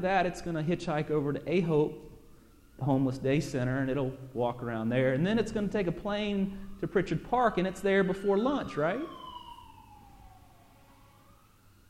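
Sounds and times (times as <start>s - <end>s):
speech: 0.0s - 2.1s, 2.8s - 9.2s
siren wailing outside: 0.0s - 11.8s.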